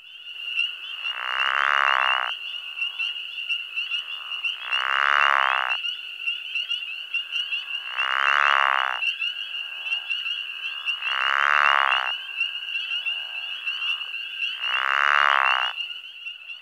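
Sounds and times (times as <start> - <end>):
high-pitched chorus of spring peepers: 0.0 - 16.6
pickerel frog giving rattling snore-like calls: 1.0 - 3.2, 4.0 - 5.8, 7.6 - 15.8.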